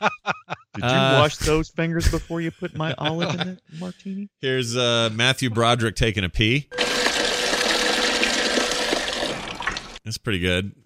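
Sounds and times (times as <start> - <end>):
laughter: 0.0 - 3.9
speech: 0.8 - 6.8, 10.1 - 10.8
water pouring into a bucket: 6.8 - 10.0.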